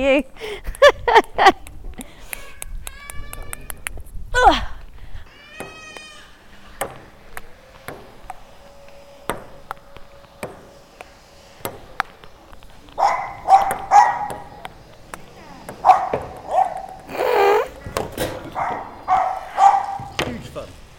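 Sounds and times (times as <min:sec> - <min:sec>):
speech: 0:00.0 - 0:01.6
dogs barking: 0:12.9 - 0:14.8, 0:15.6 - 0:17.1, 0:17.7 - 0:20.2.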